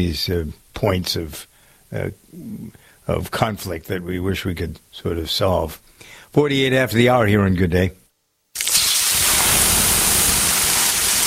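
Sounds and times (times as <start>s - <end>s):
speech: 0.0s - 8.0s
water sizzling on hot sauna rocks: 8.6s - 11.2s.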